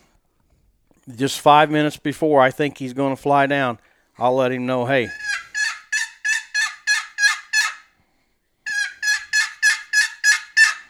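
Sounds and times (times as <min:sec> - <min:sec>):
speech: 0:01.1 - 0:05.2
hen turkey yelps on a turkey call: 0:05.0 - 0:07.9, 0:08.7 - 0:10.8.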